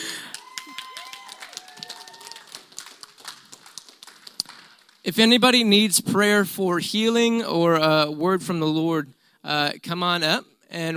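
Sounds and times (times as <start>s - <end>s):
audience clapping: 0.0s - 5.4s
scattered voices calling and whooping: 0.3s - 2.6s
speech: 5.1s - 10.9s.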